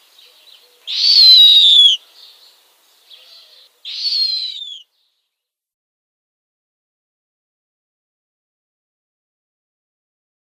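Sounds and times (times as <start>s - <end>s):
downy snowy owl young screeching: 0.8s - 2.0s, 3.1s - 4.9s.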